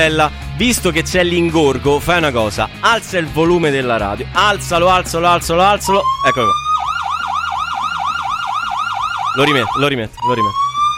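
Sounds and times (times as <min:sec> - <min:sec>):
speech: 0:00.0 - 0:06.6, 0:09.4 - 0:10.7
police siren wailing and yelping: 0:05.8 - 0:10.9.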